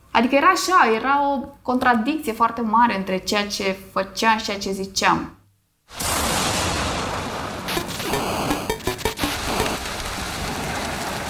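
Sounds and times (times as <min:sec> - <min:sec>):
speech: 0:00.2 - 0:06.0
heavy rain falling: 0:06.0 - 0:11.2.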